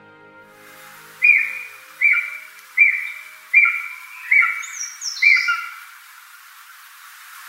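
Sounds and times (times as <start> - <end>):
Japanese green woodpecker calling on Mount Takao in Tokyo, Japan: 1.2 - 6.1.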